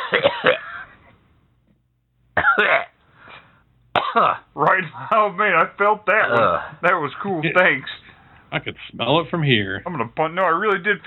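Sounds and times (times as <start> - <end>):
person coughing: 0.0 - 0.9, 2.4 - 3.0, 4.0 - 4.5
speech: 2.6 - 2.9, 4.2 - 11.0.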